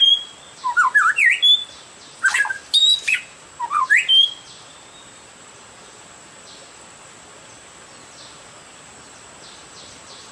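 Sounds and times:
Oriental magpie-robin giving harsh scratchy phrases and whistled slurs: 0:00.0 - 0:05.2.

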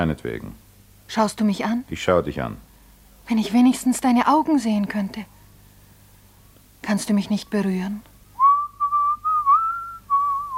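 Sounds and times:
speech: 0:00.0 - 0:02.7, 0:03.3 - 0:05.4, 0:06.9 - 0:08.1
person whistling a tune: 0:08.4 - 0:10.5.

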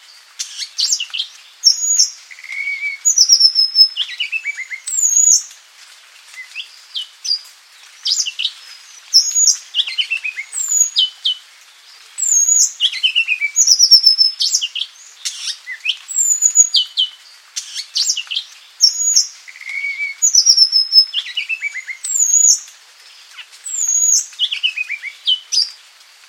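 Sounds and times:
Madagascar magpie-robin singing whistled notes and trills: 0:00.4 - 0:05.5, 0:08.1 - 0:11.4, 0:12.2 - 0:22.6, 0:23.7 - 0:25.7.

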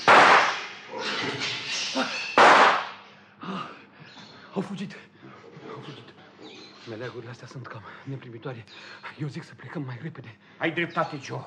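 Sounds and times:
gunshots fired into the air and into the ground: 0:00.0 - 0:00.8, 0:02.4 - 0:03.0
speech: 0:04.6 - 0:05.1, 0:05.8 - 0:06.1, 0:06.9 - 0:11.4.

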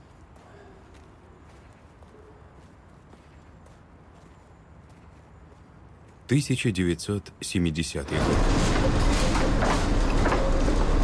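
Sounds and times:
person speaking: 0:06.3 - 0:08.4
tram rolling along its rails: 0:07.6 - 0:11.0.

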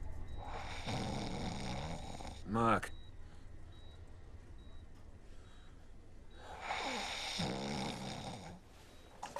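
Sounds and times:
person snoring: 0:00.4 - 0:02.5, 0:06.5 - 0:08.6
speech: 0:02.5 - 0:03.0.

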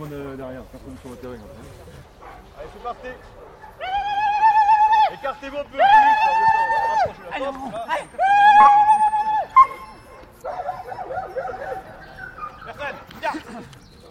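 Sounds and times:
speech: 0:00.0 - 0:04.0, 0:05.1 - 0:08.9
police dog whining, yipping and barking during a training exercise on a grassy field: 0:08.6 - 0:12.7.

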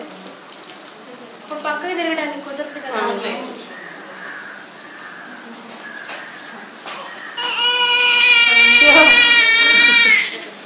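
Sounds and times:
speech: 0:01.5 - 0:03.7
baby crying loudly: 0:07.4 - 0:10.4.

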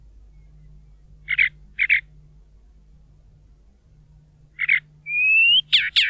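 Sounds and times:
chalk-browed mockingbird Mimus saturninus song: 0:00.3 - 0:02.1, 0:04.6 - 0:06.0.

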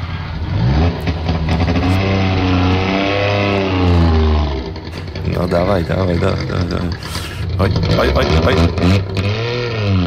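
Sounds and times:
Polish-built Syrena car engine revving: 0:00.0 - 0:10.0
speech: 0:05.4 - 0:10.0.

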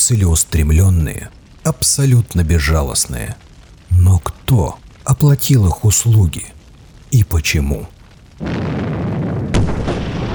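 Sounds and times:
speech: 0:00.0 - 0:08.8
series of explosions rolling across an estate at night: 0:08.4 - 0:10.3.

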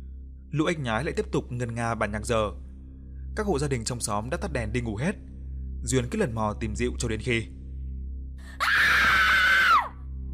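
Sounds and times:
speech: 0:00.5 - 0:02.6, 0:03.4 - 0:07.6, 0:08.4 - 0:08.9
long high-pitched scream at night from a back garden: 0:08.6 - 0:10.0.

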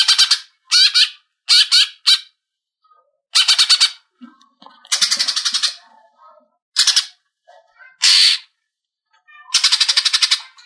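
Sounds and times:
leafbird harsh rasping calls and chatter: 0:00.0 - 0:02.4, 0:03.3 - 0:04.1, 0:04.9 - 0:05.9, 0:06.8 - 0:07.2, 0:08.0 - 0:08.5, 0:09.4 - 0:10.6.

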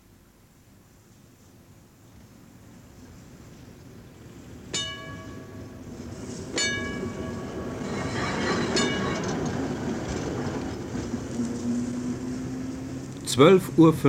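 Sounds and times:
city tram railcar driving slowly through the depot yard: 0:00.7 - 0:14.0
metallic ringing hits: 0:04.7 - 0:05.9, 0:06.5 - 0:09.6.

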